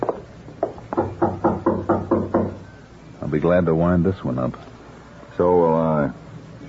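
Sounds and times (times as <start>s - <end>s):
firm knocking on a door: 0.0s - 2.6s
speech: 3.3s - 4.7s, 5.4s - 6.2s.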